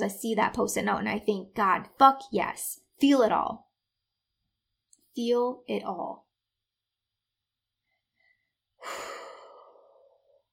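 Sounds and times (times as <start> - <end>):
speech: 0.0 - 3.7, 5.2 - 6.2, 8.8 - 9.2
deep breath taken to calm down: 7.8 - 10.5.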